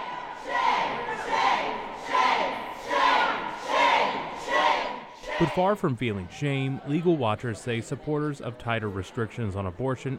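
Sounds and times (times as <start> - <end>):
protesters chanting in unison against an abortion bill at a Senate committee hearing: 0.0 - 5.6
speech: 5.4 - 10.1.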